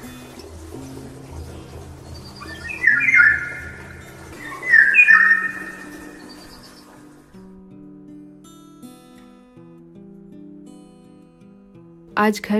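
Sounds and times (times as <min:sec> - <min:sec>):
birds chirping and twittering: 0:00.0 - 0:07.5
speech: 0:12.2 - 0:12.5.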